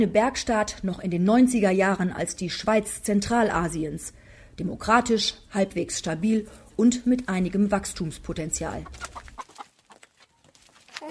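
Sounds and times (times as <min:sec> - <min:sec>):
speech: 0:00.0 - 0:09.2
hens clucking on a rural smallholding in Kyrgyzstan: 0:08.6 - 0:10.5.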